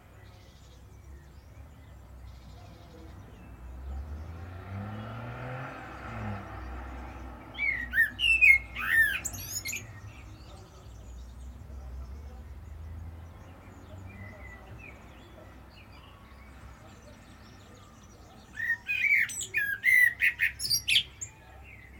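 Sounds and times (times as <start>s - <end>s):
Common blackbird Turdus merula sharp chattering calls: 7.6s - 10.5s, 18.4s - 21.3s.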